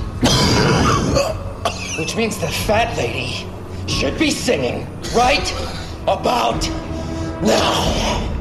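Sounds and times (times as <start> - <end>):
person coughing and choking on silver particles from an air vent: 0.2 - 2.1
speech: 2.0 - 8.3.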